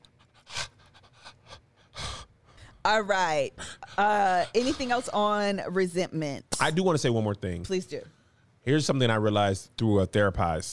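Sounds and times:
heavy panting breaths: 0:00.2 - 0:02.8, 0:03.5 - 0:05.0
speech: 0:02.8 - 0:10.7.

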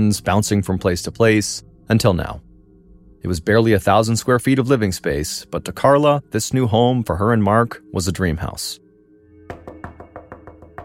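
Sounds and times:
speech: 0:00.0 - 0:02.5, 0:03.2 - 0:08.8
loud knocks on a front door: 0:09.5 - 0:10.8.

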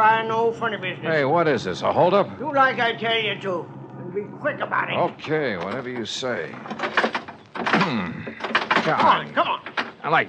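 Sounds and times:
speech: 0:00.1 - 0:10.2
stuck car door tugged and rattled with heavy clunks: 0:05.6 - 0:10.2.

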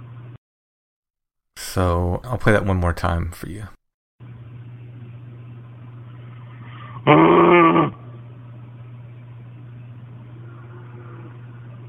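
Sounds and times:
low steady hum: 0:00.0 - 0:00.4, 0:01.6 - 0:11.8
speech: 0:01.8 - 0:03.8, 0:07.1 - 0:07.4
very loud rough animal growl: 0:06.8 - 0:08.0, 0:10.4 - 0:11.8.

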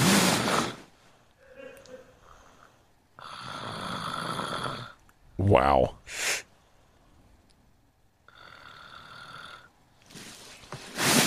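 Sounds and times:
woman snoring: 0:00.0 - 0:00.9, 0:03.2 - 0:05.0, 0:08.3 - 0:09.7
speech: 0:05.4 - 0:06.4.

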